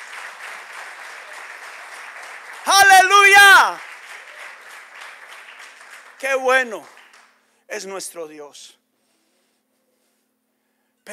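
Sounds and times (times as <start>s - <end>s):
congregation applauding at a church service: 0.0s - 7.4s
speech: 6.2s - 7.0s, 7.7s - 8.8s.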